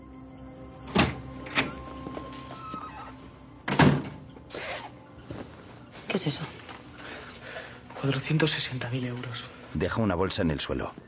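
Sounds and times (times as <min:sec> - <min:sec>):
bathroom door closing with a heavy thud: 0:00.9 - 0:01.7, 0:03.7 - 0:04.2
speech: 0:06.2 - 0:06.6, 0:08.0 - 0:11.0.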